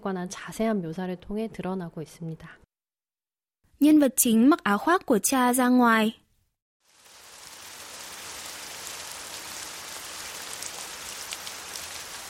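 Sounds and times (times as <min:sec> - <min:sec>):
speech: 0:00.0 - 0:02.6, 0:03.8 - 0:06.2
steady dense rain downpour: 0:06.8 - 0:12.2.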